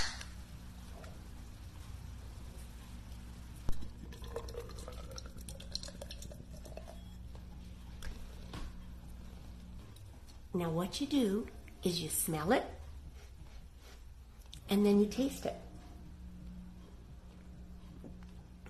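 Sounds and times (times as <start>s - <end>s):
beer fizzing and pouring into a glass: 3.8s - 7.2s
speech: 10.6s - 12.8s, 14.7s - 15.7s.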